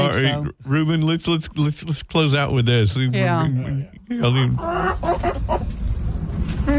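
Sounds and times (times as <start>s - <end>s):
speech: 0.1s - 5.7s
chicken clucks arranged into a catchy tune: 4.5s - 5.9s.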